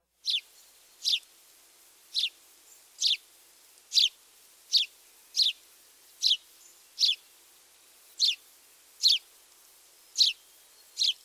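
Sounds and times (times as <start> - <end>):
house sparrow chirping: 0.2 - 1.2, 2.1 - 2.4, 3.0 - 3.2, 3.9 - 7.3, 8.1 - 8.4, 9.0 - 9.3, 10.1 - 11.2.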